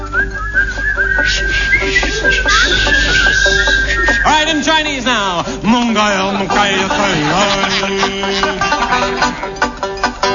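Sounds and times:
group of people whistling a tune together: 0:00.0 - 0:04.6
laughter: 0:01.1 - 0:10.2
speech: 0:01.3 - 0:02.0, 0:04.5 - 0:08.6.

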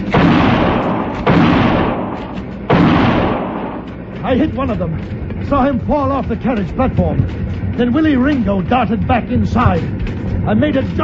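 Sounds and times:
gunshots fired back during a gunfight aboard a small train: 0:00.0 - 0:04.1
speech: 0:04.3 - 0:11.0.

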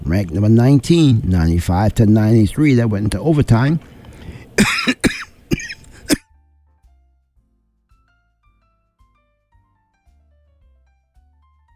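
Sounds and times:
speech: 0:00.2 - 0:03.9
rapid coughing fit: 0:04.6 - 0:06.3.

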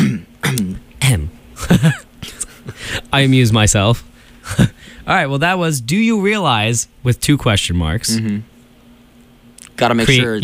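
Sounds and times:
person clearing throat: 0:00.0 - 0:00.8, 0:01.6 - 0:02.5
speech: 0:03.1 - 0:08.5, 0:09.8 - 0:10.4.

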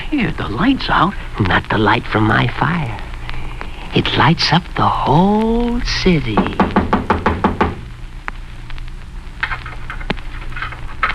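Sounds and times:
low hum: 0:00.0 - 0:11.1
speech: 0:00.1 - 0:03.1, 0:03.9 - 0:06.8
sharp knocks on a door: 0:06.4 - 0:07.8.

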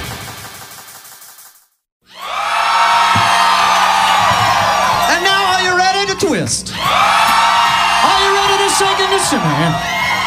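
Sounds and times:
crowd yelling and cheering: 0:02.0 - 0:10.2
speech: 0:06.4 - 0:07.1, 0:08.8 - 0:10.0.

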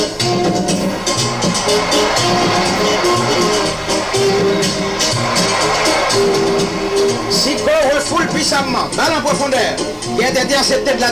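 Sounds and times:
football stadium crowd of supporters roaring and applauding: 0:00.0 - 0:10.0
speech: 0:08.6 - 0:11.1.

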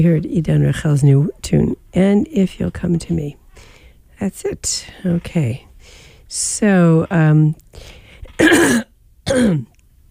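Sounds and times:
speech: 0:00.0 - 0:09.7
person clearing throat: 0:08.4 - 0:09.7.

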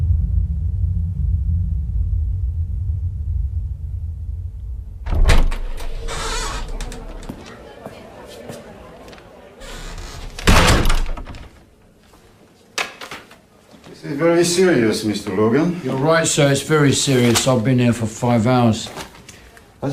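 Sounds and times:
rumble: 0:00.0 - 0:07.5
plane door opening with loud rattle and thud: 0:05.1 - 0:07.5, 0:09.6 - 0:11.6
murmuring voices: 0:05.2 - 0:10.7
speech: 0:14.4 - 0:19.1.

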